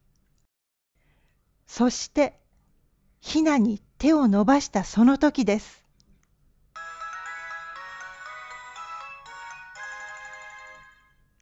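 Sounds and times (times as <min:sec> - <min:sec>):
speech: 0:01.8 - 0:02.4, 0:03.2 - 0:05.8
bright electronic mobile phone ringtone melody: 0:06.8 - 0:11.2.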